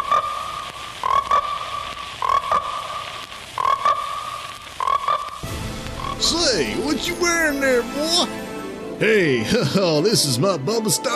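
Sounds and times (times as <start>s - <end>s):
high chorus of trilling frogs: 0.0s - 5.4s
frogs croaking in buzzy rattling bursts: 0.0s - 6.2s
speech: 6.2s - 8.4s, 9.0s - 11.1s.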